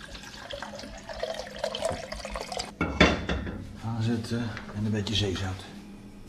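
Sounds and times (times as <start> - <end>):
filtered water pouring into a pan for cooking rice: 0.0 - 2.7
speech: 4.0 - 5.7.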